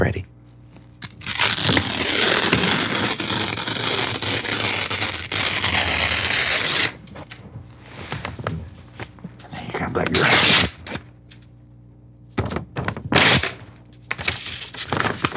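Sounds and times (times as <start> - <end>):
paper being slowly ripped in half: 0.8 - 11.1, 13.1 - 15.3
faint paper rustles: 7.0 - 9.7.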